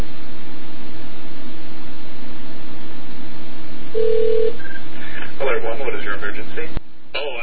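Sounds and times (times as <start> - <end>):
low steady hum: 0.0 - 7.4
telephone-line hiss: 3.9 - 4.7.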